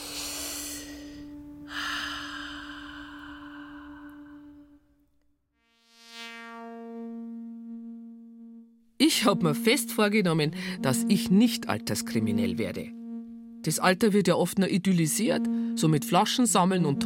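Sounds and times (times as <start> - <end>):
loud long breathing during a breathing exercise: 0.0 - 4.7
steady humming drone: 0.0 - 5.0, 5.9 - 17.0
speech: 9.1 - 13.0, 13.6 - 17.0.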